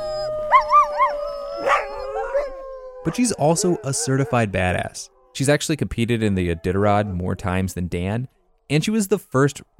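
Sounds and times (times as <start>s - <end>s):
dogs howling: 0.0s - 5.5s, 6.2s - 7.6s
dog yelp: 0.5s - 2.6s
speech: 3.0s - 9.7s.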